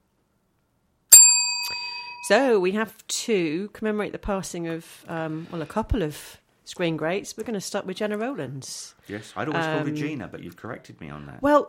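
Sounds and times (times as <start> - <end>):
single bright bell struck to mark sad news of deaths: 1.1 - 2.4
speech: 2.3 - 11.6.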